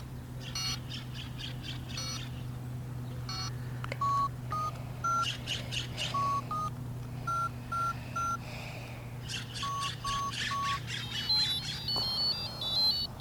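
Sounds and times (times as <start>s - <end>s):
birds chirping: 0.0s - 13.1s
short electronic beeps: 3.3s - 5.3s, 6.2s - 6.7s, 7.3s - 8.4s, 9.6s - 13.1s.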